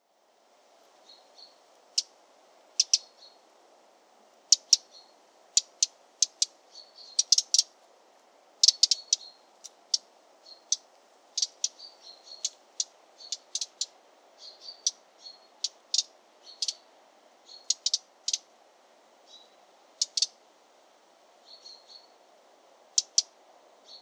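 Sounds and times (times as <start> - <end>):
wren contact calls: 2.7 - 3.1, 4.5 - 4.9, 5.6 - 7.7, 8.6 - 16.8, 17.5 - 18.5, 19.3 - 20.4, 22.9 - 23.3.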